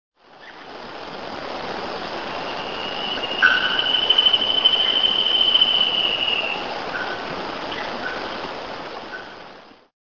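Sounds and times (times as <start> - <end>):
Hypoedaleus guttatus spot-backed antshrike calling: 2.0 - 8.4.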